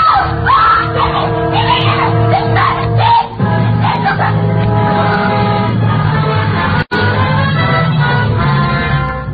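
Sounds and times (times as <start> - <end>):
woman screaming and wailing: 0.0 - 4.5
dense noisy crowd: 0.0 - 9.3.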